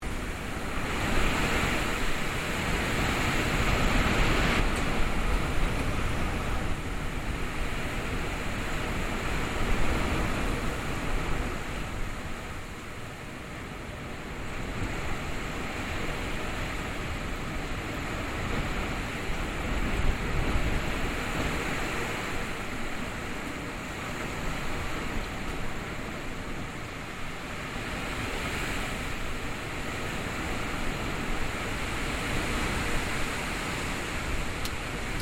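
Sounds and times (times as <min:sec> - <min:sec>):
intense wind storm: 0:00.0 - 0:35.2.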